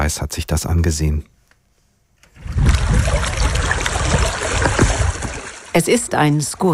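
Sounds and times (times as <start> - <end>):
speech: 0.0 - 1.3, 5.8 - 6.7
water lapping against gravestones at a reservoir: 2.3 - 6.7.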